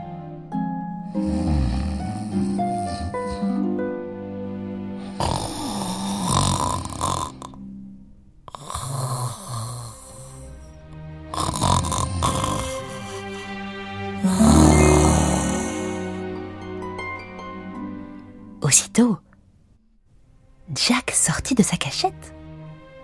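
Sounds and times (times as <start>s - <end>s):
soft sustained musical background: 0.0s - 23.0s
loud deep snoring while asleep in armchair: 1.2s - 3.6s, 5.1s - 7.6s, 8.5s - 10.6s, 11.4s - 13.2s, 14.2s - 16.2s
speech: 19.0s - 19.2s.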